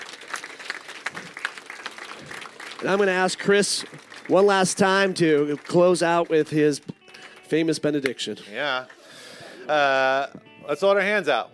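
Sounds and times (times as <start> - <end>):
audience applause at a church service: 0.0 - 7.8
speech: 2.8 - 6.9, 7.5 - 9.0, 9.7 - 11.5.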